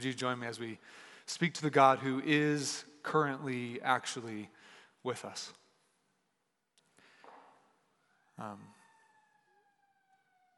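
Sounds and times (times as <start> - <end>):
speech: 0.0 - 5.6, 8.4 - 8.8
siren wailing outside: 7.5 - 10.5.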